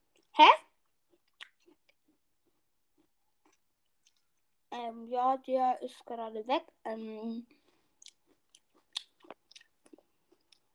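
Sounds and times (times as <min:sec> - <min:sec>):
person chewing pears: 0:00.1 - 0:04.6, 0:07.5 - 0:10.7
speech: 0:00.4 - 0:00.6, 0:04.8 - 0:07.6.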